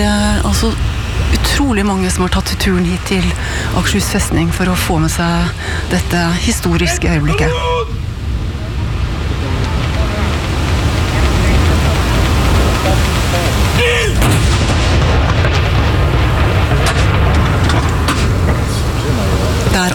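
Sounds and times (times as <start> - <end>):
steady wash of outdoor noise: 0.0 - 19.9
speech: 0.6 - 8.0
ceremonial mourning salute cannon shot at Akershus Fortress: 14.2 - 19.7.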